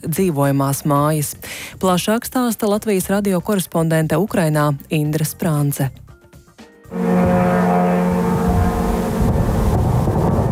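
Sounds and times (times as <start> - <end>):
speech: 0.0 - 6.0
combat drones droning overhead: 6.9 - 10.4.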